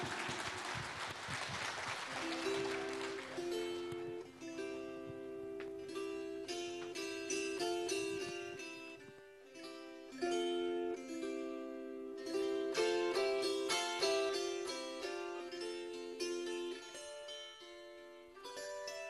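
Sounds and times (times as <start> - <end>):
crowd clapping loudly for a children's dance ensemble: 0.0 - 4.2
bright instrumental music with a steady melody: 2.1 - 19.0.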